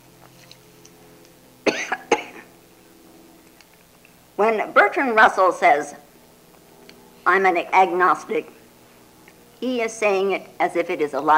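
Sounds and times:
person coughing: 1.7 - 2.4
speech: 4.4 - 6.0, 7.2 - 8.6, 9.6 - 11.3.

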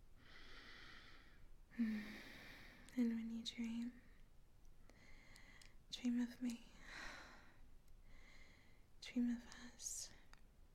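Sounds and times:
slow heavy breathing: 0.2 - 2.9, 4.9 - 5.8, 6.8 - 8.9
speech: 3.0 - 4.1, 6.0 - 6.8, 9.1 - 10.2.

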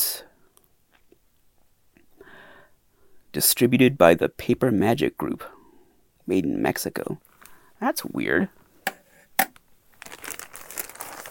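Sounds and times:
speech: 3.4 - 5.6, 6.3 - 8.6
plastic bag of a 1996 novelty item crinkling as it is handled: 9.5 - 11.3.

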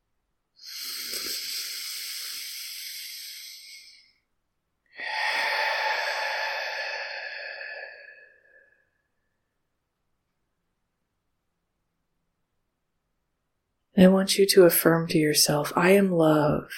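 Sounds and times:
deep breath in through the nose and out through the mouth: 0.6 - 4.2, 4.9 - 9.2
speech: 14.0 - 16.7.

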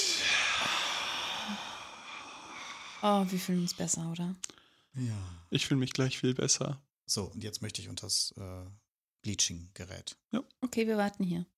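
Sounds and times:
deep exhale: 0.0 - 3.1
speech: 3.0 - 11.5.

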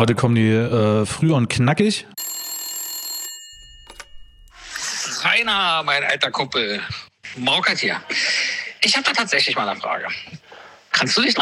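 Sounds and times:
speech: 0.0 - 2.2, 5.3 - 10.4, 11.0 - 11.4
telephone ringing with electronic bell tone: 2.2 - 4.8.

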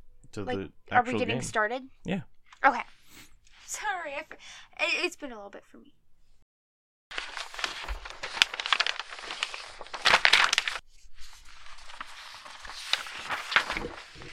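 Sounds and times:
speech: 0.4 - 6.0, 13.8 - 14.3
papers being shuffled: 7.1 - 14.3.

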